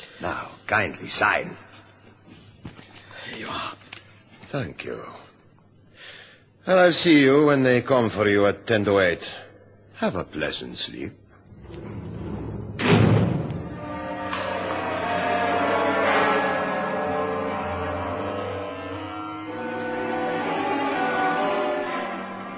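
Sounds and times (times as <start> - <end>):
speech: 0.2 - 1.7, 4.5 - 5.3, 6.6 - 9.4, 10.0 - 12.0
heavy steel cell door slamming shut: 11.5 - 14.8
resonant metallic ringing and echo of a steel cell door: 11.5 - 22.5.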